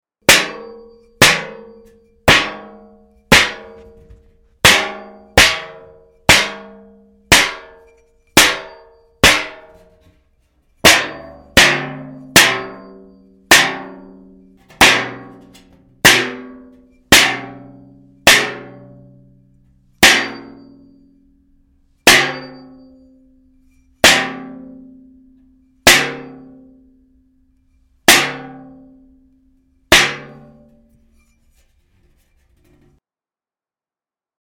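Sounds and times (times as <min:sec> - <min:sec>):
metal hit: 0:00.2 - 0:10.2, 0:10.8 - 0:21.3, 0:22.0 - 0:26.9, 0:28.0 - 0:29.2, 0:29.9 - 0:33.0.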